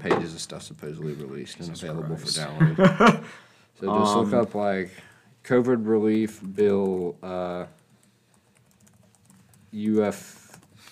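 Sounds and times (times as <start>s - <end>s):
speech: 0.0s - 7.8s, 9.7s - 10.4s
laughter: 2.6s - 3.3s
typing on a computer keyboard: 6.0s - 10.8s.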